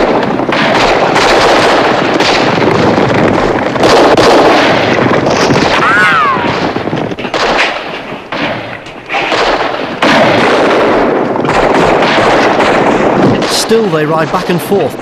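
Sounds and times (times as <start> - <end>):
heavy gunfire in a fight with bandits at a cantina: 0.0 - 14.9
speech: 13.7 - 15.0.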